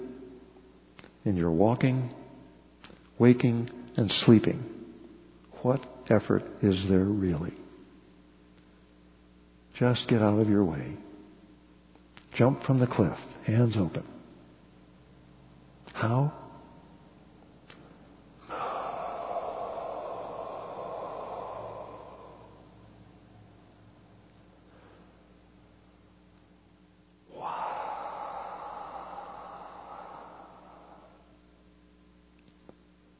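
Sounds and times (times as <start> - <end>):
faint steady hum: 0.0 - 33.1
speech: 1.2 - 2.2, 3.2 - 4.8, 5.6 - 7.6, 9.8 - 11.0, 12.4 - 14.1, 16.0 - 16.4
slow deep breathing during meditation: 17.7 - 23.8, 24.6 - 25.4, 27.3 - 31.7.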